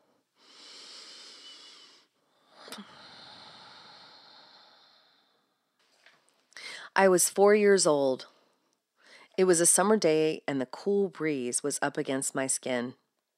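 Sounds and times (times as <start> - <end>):
slow deep human breath: 0.0 - 5.7, 6.6 - 7.0, 8.4 - 9.4
speech: 7.0 - 8.3, 9.4 - 13.0.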